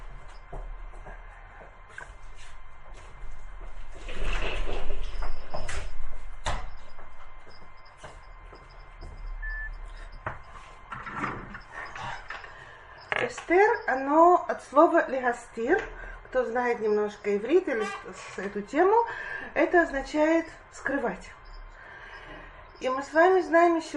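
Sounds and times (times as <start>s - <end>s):
movement and shuffling: 0.0s - 21.2s
speech: 13.3s - 21.4s, 22.8s - 23.9s.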